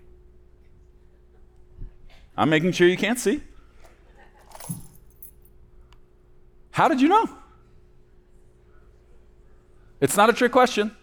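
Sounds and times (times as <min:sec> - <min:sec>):
faint low hum: 0:00.0 - 0:11.0
speech: 0:02.4 - 0:03.5, 0:06.8 - 0:07.4, 0:10.0 - 0:11.0
keys being shaken: 0:03.8 - 0:05.6.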